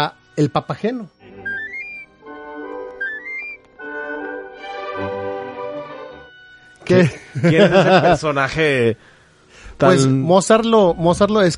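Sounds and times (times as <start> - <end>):
speech: 0.0 - 1.2, 6.9 - 9.1, 9.8 - 11.5
orchestral music: 1.1 - 7.1
person whistling quick rising runs: 1.4 - 2.1, 3.0 - 3.6
laughter: 6.9 - 8.5.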